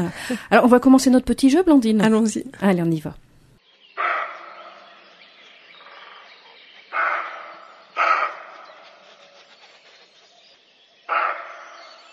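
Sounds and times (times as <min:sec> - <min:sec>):
speech: 0:00.0 - 0:03.2
roe deer barking outdoors: 0:04.0 - 0:05.2, 0:06.9 - 0:09.1, 0:11.1 - 0:12.0.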